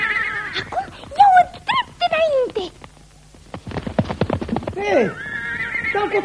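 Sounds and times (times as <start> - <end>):
short high horse whinny: 0.0 - 1.1, 4.6 - 6.2
runaway horse galloping: 0.0 - 6.2.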